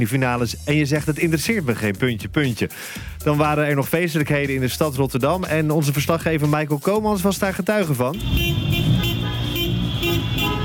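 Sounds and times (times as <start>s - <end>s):
speech: 0.0s - 8.8s
car horns honking during a street celebration in Rotterdam: 8.1s - 10.6s
engine and traffic noise: 8.1s - 10.6s.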